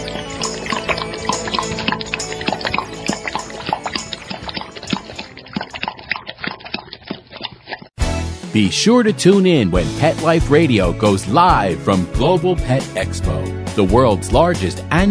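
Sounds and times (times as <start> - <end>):
water pouring: 0.0 - 7.9
speech: 8.6 - 15.0.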